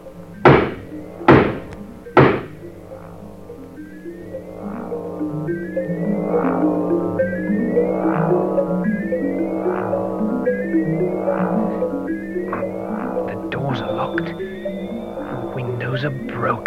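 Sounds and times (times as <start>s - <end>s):
steady droning hum with sustained tones: 0.0s - 16.6s
heavy knocks on the wooden door of a run-down house: 0.5s - 2.5s.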